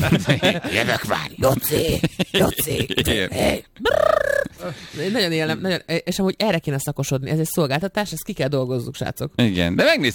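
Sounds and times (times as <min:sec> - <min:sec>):
laughter: 0:00.0 - 0:01.2
speech: 0:00.0 - 0:10.1
human voice imitating pigeon language: 0:01.8 - 0:04.6.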